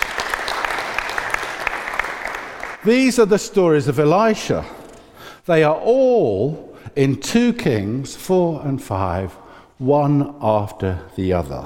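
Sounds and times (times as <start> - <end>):
audience applause: 0.0 - 2.8
speech: 2.8 - 4.8, 5.5 - 11.6.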